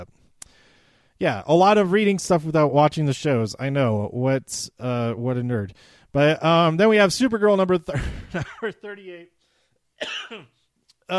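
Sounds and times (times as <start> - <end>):
speech: 1.2 - 9.4, 10.0 - 11.1
person coughing: 10.0 - 10.6.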